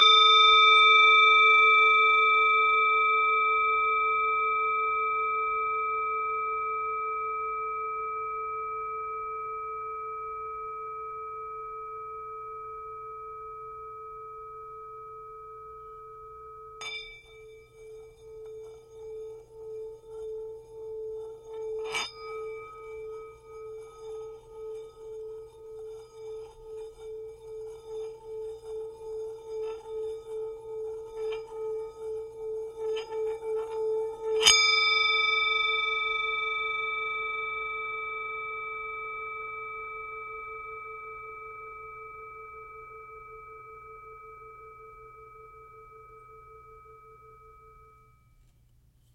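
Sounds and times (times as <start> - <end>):
Tibetan singing bowl from the Himalaya: 0.0 - 49.1.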